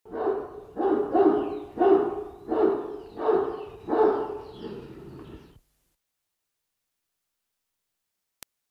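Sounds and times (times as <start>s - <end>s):
dog barking: 0.1s - 4.9s.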